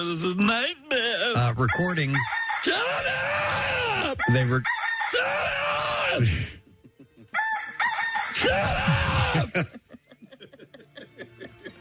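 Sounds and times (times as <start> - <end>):
speech: 0.0 - 3.5, 4.2 - 6.6, 8.4 - 9.8
rooster crowing: 1.7 - 6.1, 7.3 - 9.4
laughter: 5.9 - 7.8, 8.4 - 11.7.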